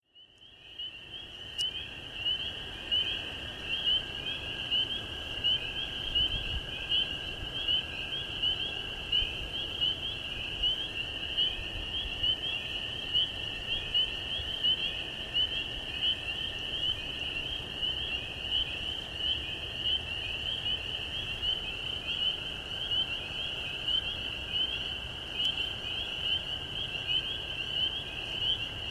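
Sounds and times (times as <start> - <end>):
spring peepers calling at a stream restoration site: 0.1 - 28.8
American toads calling at a stream restoration site: 0.2 - 28.8.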